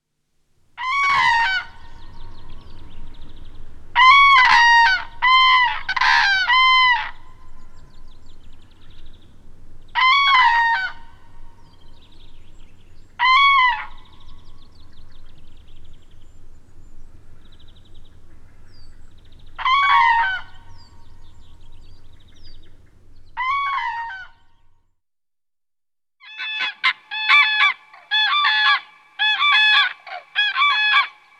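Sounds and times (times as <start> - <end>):
crane calling: 0.8 - 7.9, 9.9 - 11.8, 13.1 - 14.6, 18.2 - 24.6, 26.2 - 31.3.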